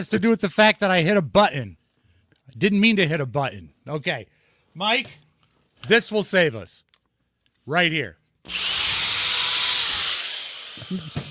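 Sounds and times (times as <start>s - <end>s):
speech: 0.0s - 1.8s, 2.5s - 5.2s, 5.8s - 6.9s, 7.7s - 8.8s, 10.8s - 11.2s
corded electric drill whining: 8.5s - 11.2s.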